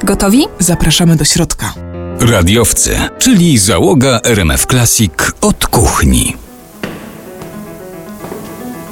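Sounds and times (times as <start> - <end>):
speech: 0.1 - 6.4
footstep taps echoing in a large entrance hall: 6.6 - 8.9.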